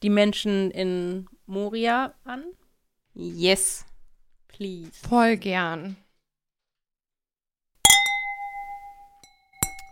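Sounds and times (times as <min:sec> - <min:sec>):
speech: 0:00.0 - 0:02.6, 0:03.2 - 0:03.9, 0:04.5 - 0:06.0
glasses clinking together in a toast: 0:07.9 - 0:09.9.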